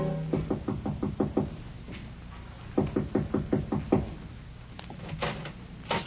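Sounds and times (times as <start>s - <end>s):
quick firm knocking on a door: 0.3s - 1.6s, 2.8s - 4.2s.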